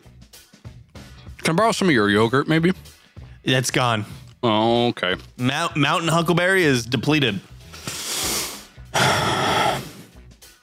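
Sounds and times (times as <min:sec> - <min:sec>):
speech: 0:01.5 - 0:07.5
heavy mouth breathing after eating spicy food: 0:07.6 - 0:10.2.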